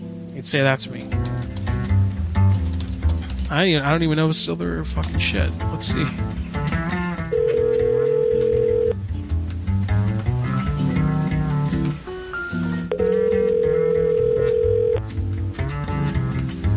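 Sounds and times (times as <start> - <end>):
busy music-like background: 0.0 - 16.7
speech: 0.4 - 1.5, 3.5 - 6.4
telephone dialing tones: 7.3 - 9.0, 12.9 - 15.1.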